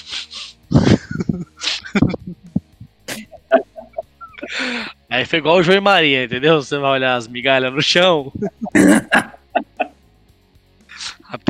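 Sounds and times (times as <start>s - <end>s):
voice imitating a loud sharp sniff: 0.0s - 0.7s, 10.9s - 11.2s
bursts of breathy laughter: 0.7s - 4.8s, 8.4s - 10.0s
speech: 5.2s - 9.1s.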